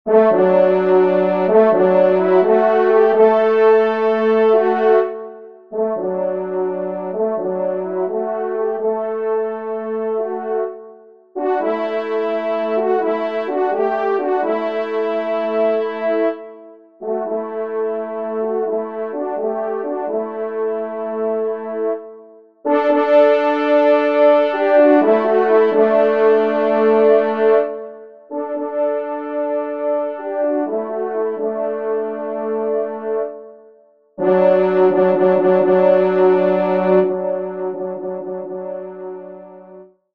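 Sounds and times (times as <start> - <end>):
hunting horn playing a waltz: 0.1 - 10.8, 11.4 - 22.0, 22.7 - 33.4, 34.2 - 39.8.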